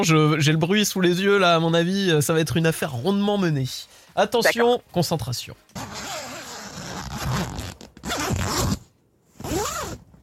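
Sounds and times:
speech: 0.0s - 6.0s
tent zipper being opened: 5.7s - 10.1s.

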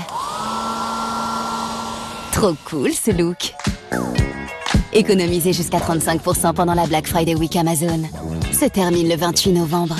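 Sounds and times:
hair dryer blowing: 0.0s - 3.4s
speech: 2.4s - 4.1s, 4.9s - 9.9s.

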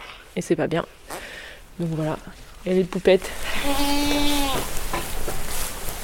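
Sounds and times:
steady farmyard hiss: 0.0s - 6.0s
speech: 0.4s - 1.1s, 1.8s - 4.8s
Alpine goat bleating on a farm: 3.4s - 4.8s.

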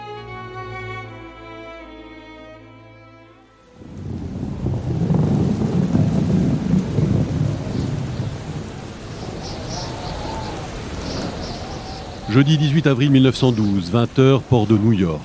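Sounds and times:
heavy rain in a storm: 3.6s - 15.2s
gusting wind in a storm: 3.8s - 15.2s
speech: 12.4s - 15.2s.

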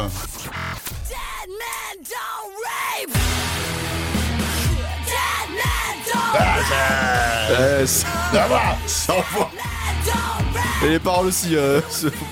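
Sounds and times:
female singer's harsh screamed vocals in a metal song: 2.1s - 3.2s, 5.1s - 10.8s
dense distorted guitars: 3.2s - 11.3s
laughter: 6.2s - 10.0s, 11.5s - 12.3s
speech: 6.7s - 12.3s.

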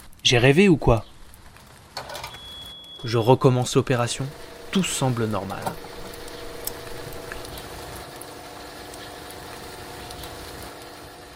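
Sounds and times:
light rain pattering: 0.0s - 11.3s
speech: 0.2s - 1.1s, 3.0s - 5.9s
soft drips: 4.3s - 11.2s.

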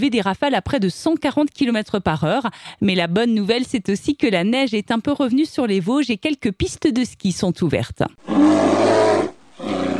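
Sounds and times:
speech: 0.0s - 9.0s
bear roaring: 8.2s - 9.9s.

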